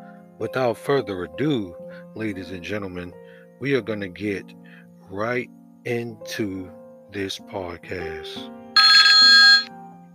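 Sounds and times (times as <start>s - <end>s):
speech: 0.4s - 8.6s
telephone ringing with a bright electronic trill: 8.8s - 9.7s.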